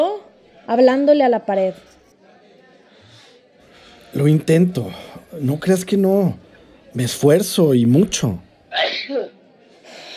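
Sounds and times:
faint noise: 0.0 - 10.1
speech: 0.7 - 2.0, 4.1 - 9.3
loud sneeze: 8.7 - 9.4.

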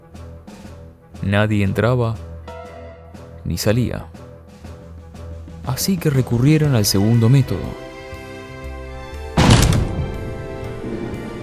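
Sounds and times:
speech: 1.2 - 2.3, 3.4 - 4.2, 5.6 - 7.8
door forced open with a heavy crash: 9.4 - 10.4
low rumbling resonance: 9.4 - 11.4.

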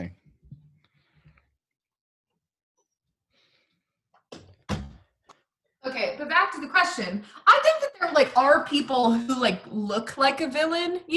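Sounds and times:
door slammed shut with a nose: 4.3 - 5.1
speech: 6.2 - 11.1.

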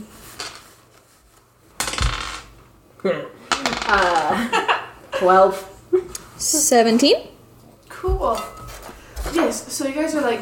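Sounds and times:
green fish dice rolling across a tabletop for perception checks: 0.4 - 0.7, 1.8 - 2.6, 3.5 - 4.4
speech: 3.0 - 5.7, 6.4 - 7.3, 8.2 - 8.6, 9.4 - 10.4.

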